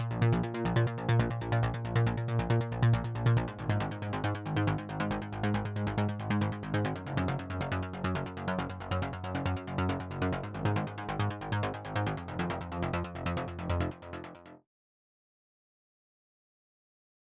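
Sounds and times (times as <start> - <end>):
mid bass tone: 0.0 - 13.5.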